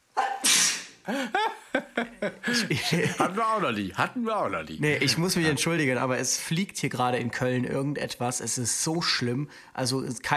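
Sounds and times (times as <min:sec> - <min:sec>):
sneeze: 0:00.2 - 0:01.0
person laughing: 0:01.1 - 0:03.7
speech: 0:01.1 - 0:10.3.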